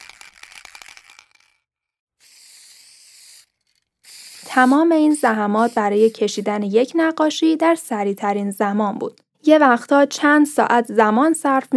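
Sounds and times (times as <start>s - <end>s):
aerosol spray paint can rattling clatter: 0.0s - 1.6s, 2.2s - 6.4s
aerosol spray paint can hissing as paint is sprayed over a stencil on a wall: 2.2s - 6.5s
speech: 4.6s - 11.7s.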